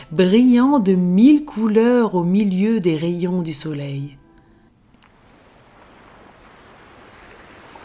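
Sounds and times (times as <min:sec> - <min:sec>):
speech: 0:00.1 - 0:04.2
small waves breaking gently on the shore: 0:04.9 - 0:07.8.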